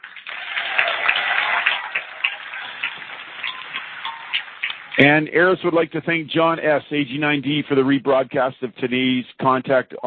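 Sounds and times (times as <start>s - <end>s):
audience applauding over a narrow phone or radio line: 0.0s - 5.8s
speech: 5.0s - 10.0s.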